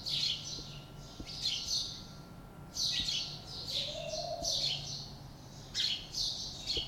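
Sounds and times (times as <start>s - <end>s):
House sparrow chirping: 0.0s - 6.8s
soft low hoot: 3.4s - 4.9s.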